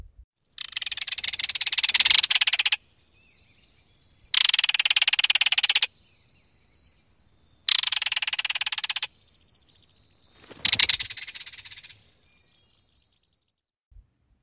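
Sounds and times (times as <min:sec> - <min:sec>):
belted kingfisher rattling call: 0:00.6 - 0:02.8, 0:04.3 - 0:05.9, 0:07.7 - 0:09.1, 0:10.6 - 0:11.9.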